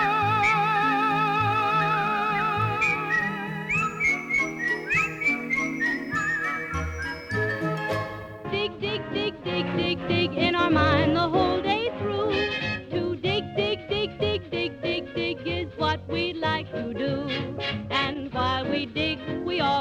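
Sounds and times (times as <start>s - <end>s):
cheerful bouncy melody whistled with wavering vibrato: 0.0s - 8.4s
soft orchestral backing: 0.0s - 19.7s
bright tinkling bell notes: 3.8s - 8.3s.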